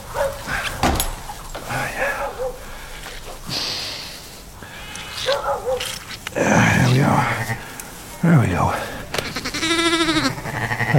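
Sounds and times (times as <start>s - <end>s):
sheepdog sounds: 0.0s - 3.6s, 5.0s - 7.3s
rustling movement outdoors: 0.0s - 10.9s
flock of sheep bleating: 6.4s - 10.9s
speech: 8.2s - 8.8s.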